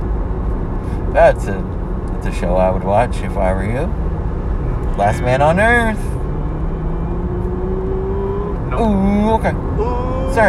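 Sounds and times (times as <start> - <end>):
speech: 1.1 - 4.1, 5.0 - 6.1, 8.8 - 10.4
truck engine revving: 3.7 - 10.4.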